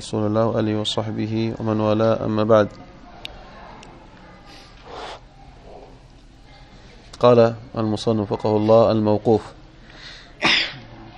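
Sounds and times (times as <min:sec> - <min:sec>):
speech: 0:00.0 - 0:02.9, 0:07.2 - 0:09.6
sneeze: 0:10.4 - 0:10.9.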